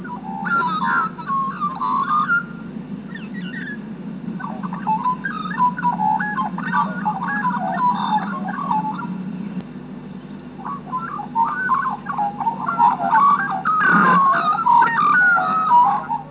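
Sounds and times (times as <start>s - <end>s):
group of magpies: 0.0s - 16.2s.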